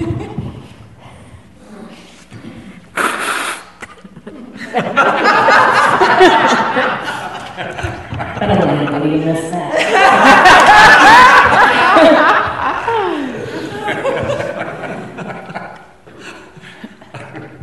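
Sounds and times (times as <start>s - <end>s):
nose blowing: 2.8s - 4.0s
laughter: 3.8s - 17.6s.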